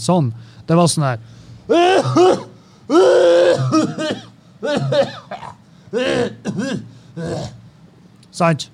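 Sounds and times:
speech: 0.0s - 7.6s, 8.4s - 8.7s
person mimicking a man's harsh rasping cough: 1.7s - 7.6s.

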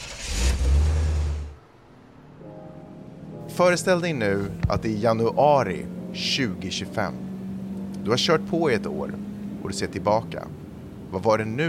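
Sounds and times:
car engine starting and revving: 0.0s - 1.6s, 4.4s - 11.2s
speech: 3.6s - 7.3s, 8.0s - 11.6s.

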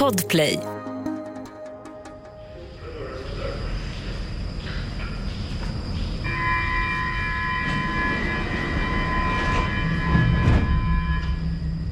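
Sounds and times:
speech: 0.1s - 0.7s
subway train rumbling: 2.4s - 11.9s
steady mechanical hum: 2.5s - 11.9s.

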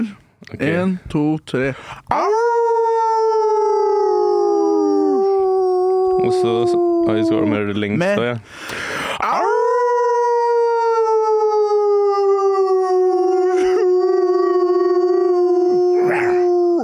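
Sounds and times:
speech: 0.0s - 3.0s, 6.2s - 9.4s
short breaths or murmurs: 1.7s - 2.1s, 8.4s - 9.2s
people howling like wolves: 2.1s - 7.7s, 9.2s - 16.8s.

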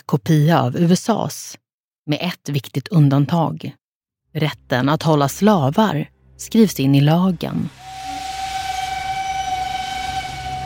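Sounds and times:
speech: 0.1s - 3.8s, 4.4s - 7.9s
steam train whistle: 7.8s - 10.6s.

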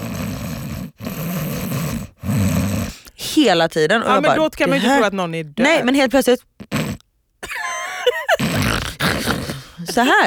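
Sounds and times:
voice imitating a taxi driver's heavy snoring-like breathing: 0.0s - 3.3s, 4.0s - 5.1s, 8.3s - 10.2s
speech: 3.4s - 6.8s, 9.9s - 10.2s
laughter: 7.4s - 10.2s.

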